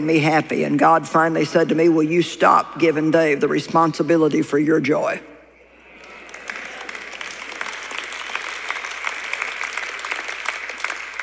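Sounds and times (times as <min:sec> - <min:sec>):
speech: 0:00.0 - 0:05.3
room of people clapping modestly: 0:05.9 - 0:11.2.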